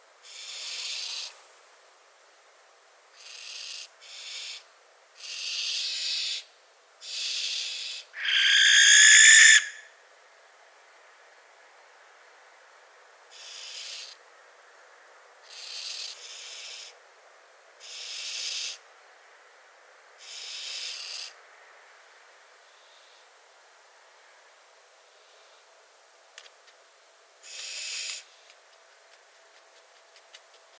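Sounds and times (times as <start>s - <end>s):
Tyto alba barn owl: 0.2s - 1.4s, 3.1s - 9.9s, 13.3s - 14.2s, 15.4s - 17.0s, 17.8s - 18.9s, 20.2s - 21.4s, 27.4s - 28.4s.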